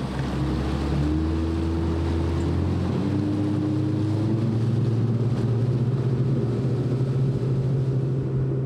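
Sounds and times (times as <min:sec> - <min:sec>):
motorboat engine droning as the boat pushes off into a channel: 0:00.0 - 0:08.6
rushing water in the Lower Mississippi River wetlands: 0:00.0 - 0:08.6.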